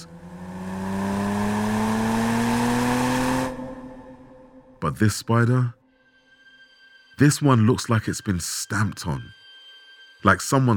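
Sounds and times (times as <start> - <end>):
sports car engine revving: 0.0 - 4.7
speech: 4.8 - 5.8, 7.2 - 9.4, 10.2 - 10.7.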